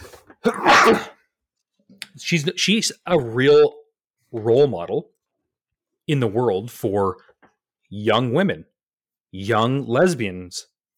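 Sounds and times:
speech: 0.4s - 1.1s, 2.2s - 5.1s, 6.1s - 7.3s, 7.9s - 8.7s, 9.3s - 10.7s
person sneezing: 0.4s - 1.2s.

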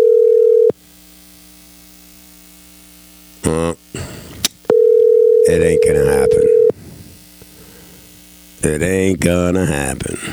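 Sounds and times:
unanswered phone call's electronic ringback tone: 0.0s - 0.8s, 4.7s - 6.8s
speech: 8.7s - 10.3s.

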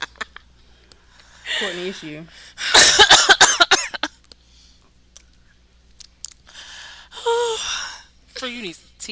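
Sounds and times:
speech: 1.7s - 2.4s, 8.6s - 9.0s
person coughing harshly: 2.7s - 4.1s.

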